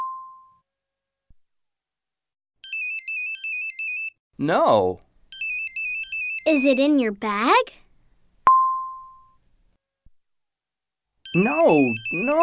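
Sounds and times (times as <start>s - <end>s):
mobile phone in a pocket playing a bright stepped electronic ringtone melody: 2.6s - 4.2s, 5.3s - 6.9s, 11.3s - 12.4s
speech: 4.4s - 5.1s, 6.4s - 7.8s, 11.3s - 12.4s
person asking a short spoken question: 6.5s - 7.8s, 11.4s - 12.4s.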